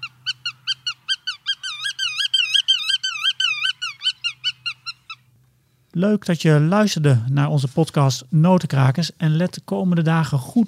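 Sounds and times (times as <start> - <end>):
black-tailed godwit calling in loud nasal repeated notes: 0.0 - 5.3
speech: 6.0 - 10.6.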